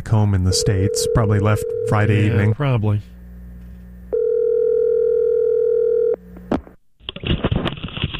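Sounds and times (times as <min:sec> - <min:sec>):
speech: 0:00.1 - 0:03.2
ringback tone of an outgoing phone call: 0:00.5 - 0:02.5, 0:04.1 - 0:06.2.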